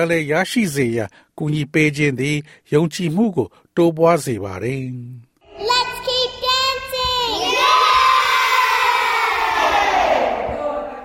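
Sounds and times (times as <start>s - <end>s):
speech: 0.0s - 5.8s
group of children shouting and cheering: 5.4s - 11.0s.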